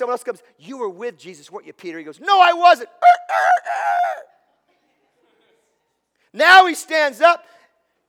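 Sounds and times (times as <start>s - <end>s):
speech: 0.0s - 4.4s, 6.3s - 7.6s
rooster crowing: 3.0s - 4.3s.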